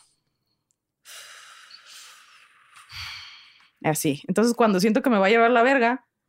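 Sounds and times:
deep breathing: 0.4s - 3.8s
speech: 3.8s - 6.1s.

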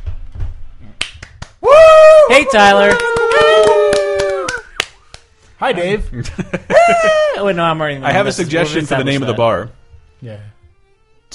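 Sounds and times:
scattered applause as someone enters: 1.5s - 5.2s
speech: 2.3s - 3.5s, 5.6s - 10.6s
laughter: 6.1s - 8.9s.

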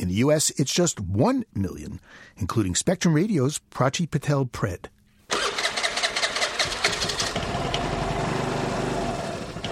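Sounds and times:
speech: 0.0s - 5.0s
small motor scooter engine cranking and settling into idle: 5.3s - 9.6s.

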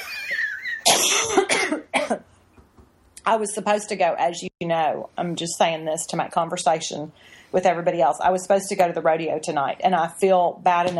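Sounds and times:
person coughing: 0.8s - 2.3s
speech: 3.2s - 10.9s.

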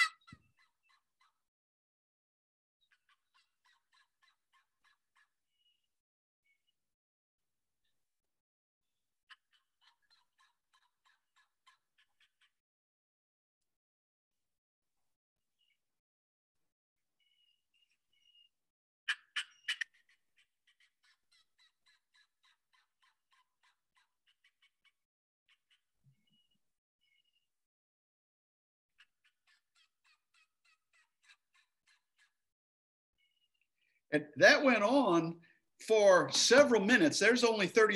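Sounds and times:
rapid choppy turkey calling: 0.0s - 0.4s, 19.1s - 20.2s
speech: 34.1s - 37.9s.

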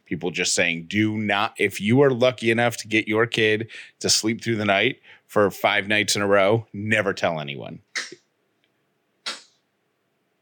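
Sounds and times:
speech: 0.1s - 8.1s
baby sneezes: 8.0s - 8.3s, 9.3s - 9.6s.

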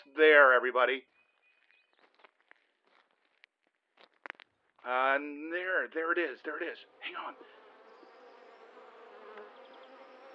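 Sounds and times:
speech: 0.0s - 1.1s, 4.8s - 7.6s
hornets buzzing around their nest: 5.2s - 10.3s.

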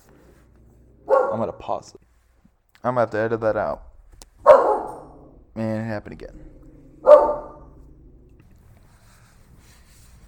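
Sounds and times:
low hum: 0.0s - 10.2s
dog barking: 1.0s - 1.6s, 4.4s - 5.4s, 6.9s - 7.9s
speech: 1.3s - 2.1s, 2.8s - 3.9s, 5.6s - 6.6s.

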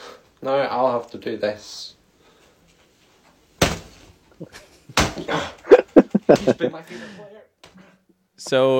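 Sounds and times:
speech: 0.4s - 2.0s, 4.4s - 7.5s, 8.4s - 8.7s
fist punching an older football jersey: 3.6s - 4.0s, 4.9s - 5.4s
laughter: 4.4s - 7.2s
excited indistinct vocal sounds: 5.2s - 7.2s.

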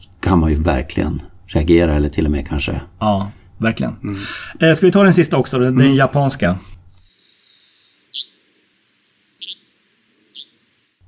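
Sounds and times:
speech: 0.0s - 6.8s, 8.1s - 8.3s
faint steady hiss: 0.0s - 11.0s
sparrow-like low-pitched bird calls: 7.0s - 11.0s.

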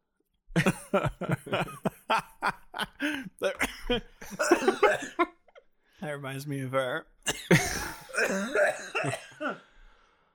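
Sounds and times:
speech: 0.6s - 1.7s, 3.0s - 5.1s, 6.2s - 9.2s
choking cough after inhaling a piece of almond into the windpipe: 3.6s - 5.2s, 7.3s - 9.7s.

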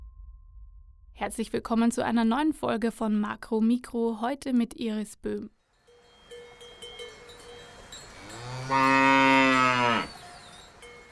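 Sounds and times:
speech: 1.2s - 5.6s, 8.7s - 9.1s
cow mooing: 8.2s - 10.2s.

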